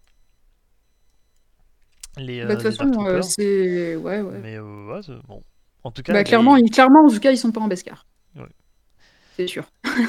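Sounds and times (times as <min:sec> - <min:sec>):
faint high-pitched electronic alarm beeps: 0:02.1 - 0:07.3
speech: 0:02.2 - 0:08.6, 0:09.4 - 0:10.0
laughter: 0:09.8 - 0:10.0.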